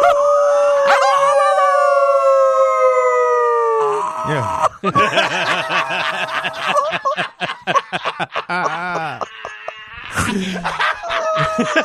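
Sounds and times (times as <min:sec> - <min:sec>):
person howling like a wolf: 0:00.0 - 0:04.6
laughter: 0:04.3 - 0:11.8
speech: 0:04.8 - 0:08.8.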